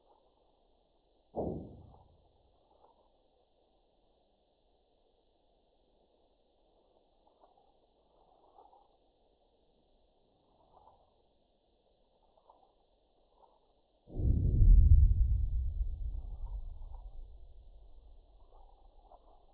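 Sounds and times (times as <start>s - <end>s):
sonified magnitude 4.9 earthquake at Piedimonte Matese: 1.4s - 2.2s, 14.1s - 19.5s.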